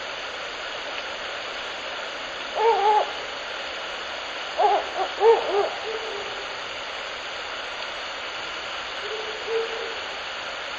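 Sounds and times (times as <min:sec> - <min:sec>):
background hiss: 0:00.0 - 0:10.7
Ural owl hooting in the evening: 0:02.5 - 0:03.2, 0:04.6 - 0:06.4, 0:09.0 - 0:10.0.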